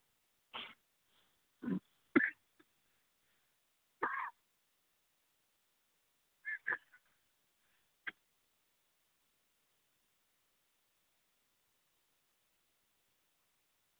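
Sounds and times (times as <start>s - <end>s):
person coughing to clear something stuck in the throat: 1.6s - 2.4s, 4.0s - 4.4s.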